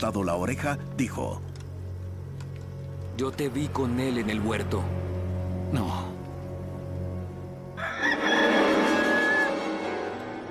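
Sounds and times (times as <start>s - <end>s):
speech: 0.0s - 1.5s, 3.2s - 5.0s, 5.7s - 6.1s
rooster crowing: 7.7s - 9.9s.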